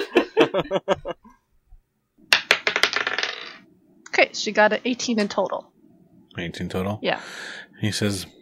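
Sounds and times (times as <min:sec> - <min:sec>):
laughter: 0:00.0 - 0:01.2
speech: 0:00.5 - 0:01.2, 0:04.2 - 0:05.7, 0:06.4 - 0:08.4
dice clattering across a hard tabletop during a role-playing game roll: 0:02.3 - 0:03.6.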